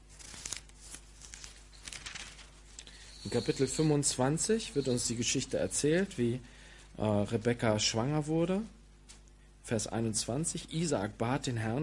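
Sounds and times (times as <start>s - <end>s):
thin book pages being flipped back: 0.0s - 2.8s
speech: 3.2s - 8.8s, 9.7s - 11.8s.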